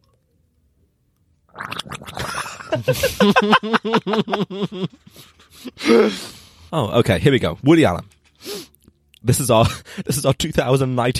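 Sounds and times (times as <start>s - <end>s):
person gargling liquid loudly: 1.5s - 3.0s
laughter: 2.5s - 5.2s
speech: 2.7s - 5.3s, 5.9s - 8.1s, 9.2s - 11.1s.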